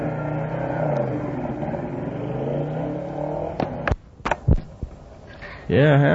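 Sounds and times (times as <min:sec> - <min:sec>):
motorcycle engines revving in a movie trailer: 0:00.0 - 0:04.0.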